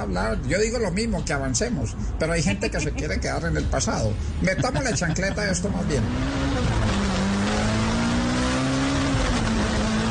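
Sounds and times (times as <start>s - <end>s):
speech: 0.0s - 6.8s
laughter: 2.4s - 3.2s, 4.4s - 5.8s
small car engine accelerating hard: 5.3s - 10.0s.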